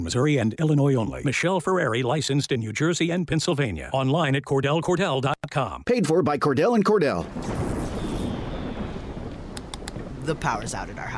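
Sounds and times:
speech: 0.0s - 7.6s, 10.3s - 11.1s
thunderstorm rumbling with a deep rolling roar: 7.0s - 11.1s
wash of rain-like hiss: 7.2s - 11.1s.

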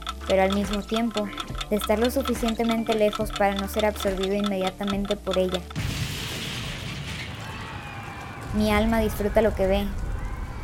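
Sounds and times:
speech: 0.3s - 6.0s, 8.6s - 10.0s
crackling debris: 5.7s - 10.6s
bomb in a backpack exploding and derailing a metro train: 5.8s - 10.5s
fire roaring after a metro train derailment: 5.8s - 10.6s.

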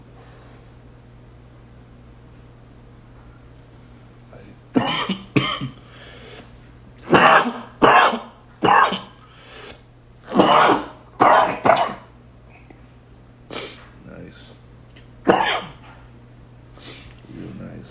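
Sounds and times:
faint steady hum: 0.0s - 17.8s
person clearing throat: 4.8s - 5.8s, 7.1s - 9.2s, 10.3s - 12.1s, 15.3s - 15.8s
person harsh coughing: 4.8s - 5.8s, 7.1s - 9.2s, 10.3s - 12.1s, 15.3s - 15.8s.

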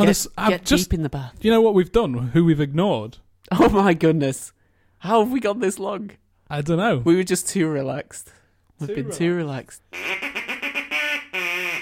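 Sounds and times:
speech: 0.0s - 10.3s
duck quacking: 9.9s - 11.8s.

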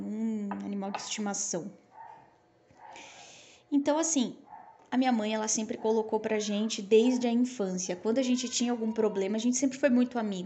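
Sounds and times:
speech: 0.6s - 1.8s, 3.8s - 10.4s
neighbor's dog barking in the distance: 1.9s - 3.2s, 4.4s - 4.9s, 5.7s - 7.5s.

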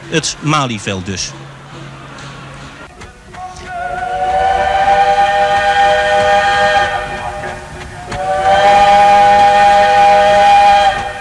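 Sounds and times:
speech: 0.1s - 1.4s
long loud train whistle blasts: 3.4s - 11.2s.

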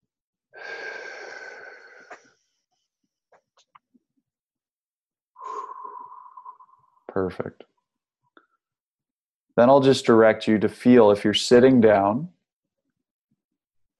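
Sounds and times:
breath pushed out through slightly pursed lips in a guided breathing exercise: 0.6s - 2.4s, 5.4s - 7.1s
speech: 7.2s - 7.7s, 9.6s - 12.4s.

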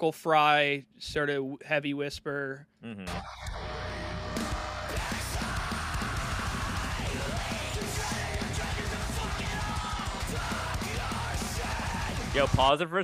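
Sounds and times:
speech: 0.0s - 3.7s, 12.4s - 13.0s
distorted guitars: 3.0s - 12.7s
heavy metal music: 3.1s - 12.7s
harsh gravelly screamed vocals: 3.7s - 12.5s
pounding drums: 4.3s - 12.7s
male backup screamer: 4.8s - 12.5s.

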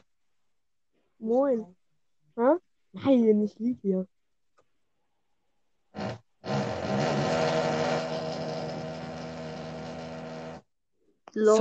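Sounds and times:
speech: 1.2s - 1.8s, 2.4s - 4.2s, 11.4s - 11.5s
power drill whirring: 5.9s - 10.7s.

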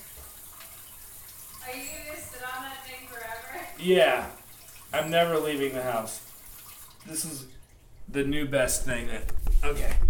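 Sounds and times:
warm water spraying from an adjustable nozzle: 0.0s - 7.5s
speech: 3.8s - 6.2s, 7.0s - 10.0s.

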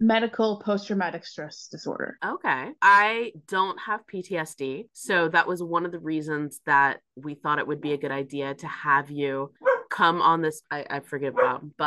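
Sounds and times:
speech: 0.0s - 11.8s
dog barking: 9.6s - 9.9s, 11.4s - 11.6s.

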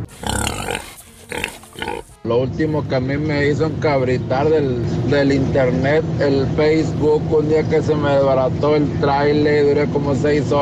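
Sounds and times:
pig grunting: 0.0s - 2.2s
speech: 2.3s - 10.6s.

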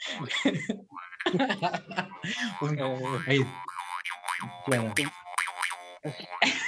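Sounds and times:
laughter: 0.0s - 3.5s, 6.1s - 6.6s
speech: 0.1s - 3.7s, 4.4s - 5.2s, 6.0s - 6.6s
jaw harp twanging: 2.4s - 6.4s.

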